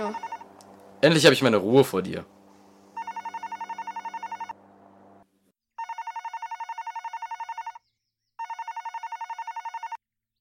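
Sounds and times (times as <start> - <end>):
telephone ringing with trilling electronic tone: 0.0 - 0.5, 3.0 - 4.6, 5.8 - 10.0
speech: 1.0 - 2.4.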